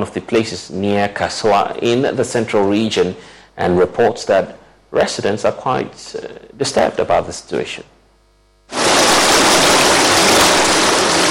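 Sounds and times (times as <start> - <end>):
speech: 0.0 - 8.0
floodwater gushing over a road: 8.8 - 11.2.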